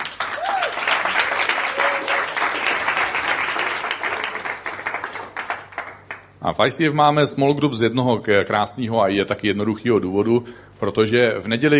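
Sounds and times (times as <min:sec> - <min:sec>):
audience applause: 0:00.0 - 0:06.3
person whooping: 0:00.2 - 0:01.0, 0:01.6 - 0:02.3
speech: 0:06.4 - 0:11.7.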